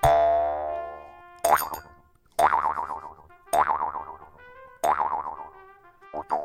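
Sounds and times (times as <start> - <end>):
jaw harp twanging with metal strip held against the mouth: 0.0 - 4.1.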